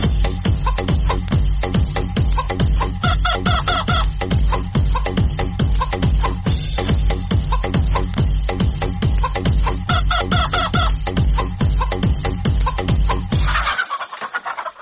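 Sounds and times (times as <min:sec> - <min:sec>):
pulsing rhythmic background: 0:00.0 - 0:14.8
rooster crowing and clucking: 0:03.0 - 0:04.1, 0:09.2 - 0:11.0, 0:13.4 - 0:14.8.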